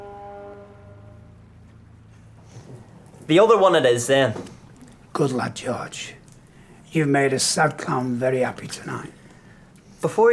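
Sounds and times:
loud sustained droning horn blast echoing across night sky: 0:00.0 - 0:01.7
speech: 0:03.3 - 0:04.6, 0:05.2 - 0:06.2, 0:06.9 - 0:09.2, 0:10.0 - 0:10.3.

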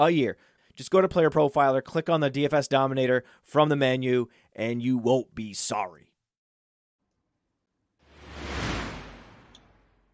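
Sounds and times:
speech: 0:00.0 - 0:06.1
airy whoosh transition effect: 0:08.0 - 0:10.1.

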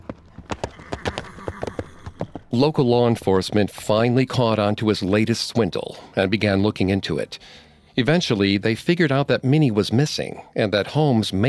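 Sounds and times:
horse hooves clip-clopping: 0:00.0 - 0:04.8
speech: 0:02.5 - 0:11.4.

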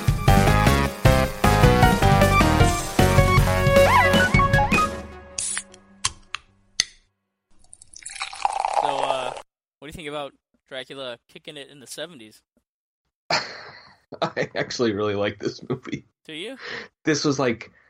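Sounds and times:
music: 0:00.0 - 0:06.4
ice cubes clinking in a glass: 0:07.6 - 0:09.3
drink pouring over ice into a glass: 0:07.6 - 0:09.5
speech: 0:10.0 - 0:12.5, 0:13.3 - 0:17.8
laughter: 0:13.3 - 0:14.8.

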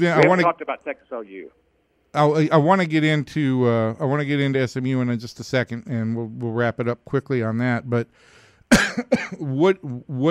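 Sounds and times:
speech: 0:00.0 - 0:10.2
person coughing: 0:08.7 - 0:09.4.

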